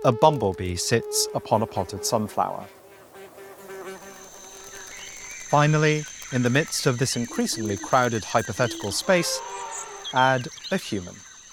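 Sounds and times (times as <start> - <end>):
speech: 0.0 - 2.8, 5.5 - 11.3
mosquito buzzing through the air: 2.5 - 11.5.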